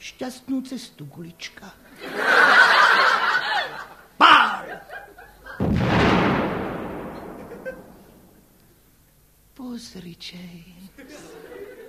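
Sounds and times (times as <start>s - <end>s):
speech: 0.0s - 2.5s, 9.8s - 11.5s
people snickering and chuckling: 1.9s - 5.6s, 7.3s - 8.2s, 11.0s - 11.8s
cannon firing with a rolling rumble: 5.6s - 8.6s
sharp crack: 5.6s - 8.7s.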